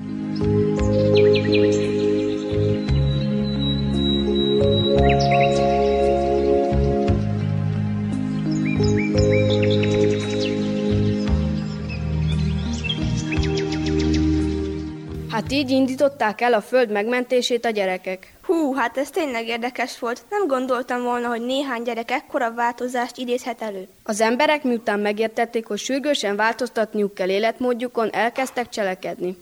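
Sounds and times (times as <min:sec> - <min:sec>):
bright birdsong with chirps and trills: 0:00.0 - 0:15.2
steady warm musical backing: 0:00.0 - 0:16.4
speech: 0:15.6 - 0:29.3.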